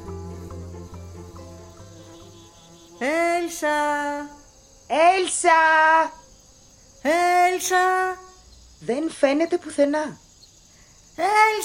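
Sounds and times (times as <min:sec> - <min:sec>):
bees buzzing flying around in a cool forest: 0:00.0 - 0:08.8
speech: 0:03.0 - 0:06.2, 0:07.0 - 0:08.2, 0:08.8 - 0:10.2, 0:11.2 - 0:11.6.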